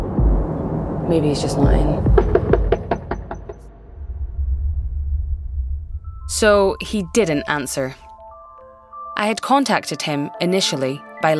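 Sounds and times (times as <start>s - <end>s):
low outdoor rumble: 0.0s - 3.0s, 3.7s - 9.0s
speech: 1.1s - 2.2s, 6.3s - 8.0s, 9.2s - 11.3s
firm knocks on a front door: 1.6s - 3.6s.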